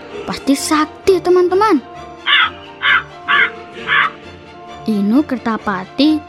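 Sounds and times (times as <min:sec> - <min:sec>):
speech: 0:00.3 - 0:02.6, 0:04.9 - 0:06.2
crow cawing: 0:02.2 - 0:04.2.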